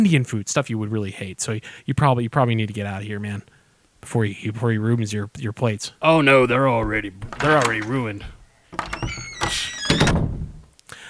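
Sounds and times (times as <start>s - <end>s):
speech: 0.0s - 9.6s
creaking squeaky door hinge: 6.2s - 10.7s.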